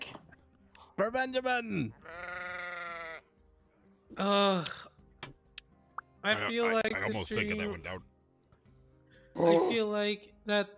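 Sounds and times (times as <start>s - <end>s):
speech: 1.0s - 2.2s, 4.2s - 4.8s, 6.2s - 8.1s, 9.4s - 10.7s
sheep bleating: 1.9s - 3.3s.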